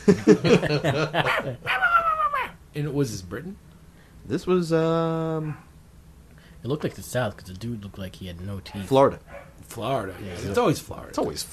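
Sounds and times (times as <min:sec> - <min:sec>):
speech: 0:00.0 - 0:02.0, 0:02.8 - 0:05.7, 0:06.6 - 0:11.5
laughter: 0:00.0 - 0:02.4
police canine unit dog barking and yelping during a search: 0:01.2 - 0:02.6, 0:08.8 - 0:10.4.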